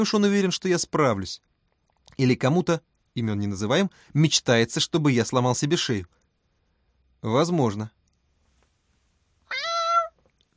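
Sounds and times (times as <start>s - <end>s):
speech: 0.0s - 1.5s, 2.2s - 6.2s, 7.2s - 8.0s
male cat meowing at the door: 9.5s - 10.2s.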